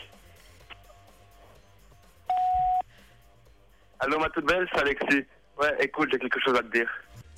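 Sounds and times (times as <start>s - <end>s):
answering machine beep: 2.3s - 2.9s
speech: 4.1s - 7.2s.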